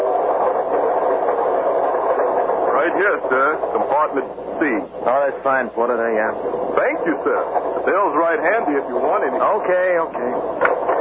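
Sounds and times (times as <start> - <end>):
night train to Boston rumbling in motion: 0.0 - 10.9
speech: 3.0 - 10.7.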